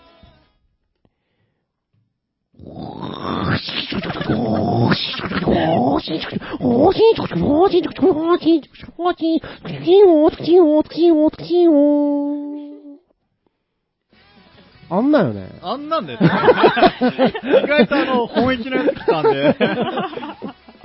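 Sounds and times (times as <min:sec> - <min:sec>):
man imitating a tsukutsuku-boshi cicada call with his voice: 0:02.7 - 0:13.0
laughter: 0:03.9 - 0:08.4, 0:16.2 - 0:20.8
speech: 0:04.3 - 0:12.3, 0:14.9 - 0:20.4.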